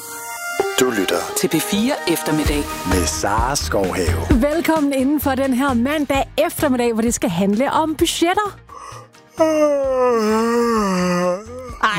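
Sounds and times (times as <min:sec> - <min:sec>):
speech: 0:00.8 - 0:11.9
long voiced human yawn: 0:08.8 - 0:11.8.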